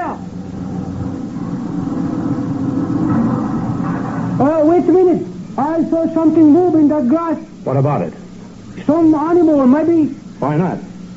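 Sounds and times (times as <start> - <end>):
truck engine rumbling: 0.0 - 7.6
speech: 5.8 - 8.2, 8.8 - 10.9.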